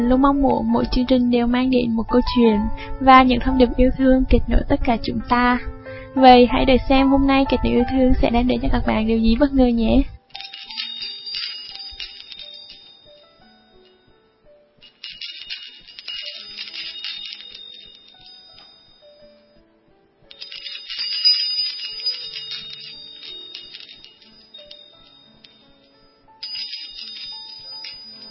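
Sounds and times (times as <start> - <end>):
speech: 0.0 - 10.2
wind chime tinkling: 10.3 - 14.2, 14.8 - 19.5, 20.3 - 28.2.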